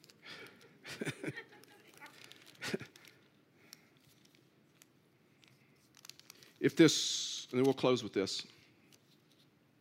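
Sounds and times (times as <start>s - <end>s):
laughter: 0.8s - 2.0s
paper receipt being crumpled: 1.5s - 3.3s, 4.0s - 6.6s
speech: 6.6s - 8.6s.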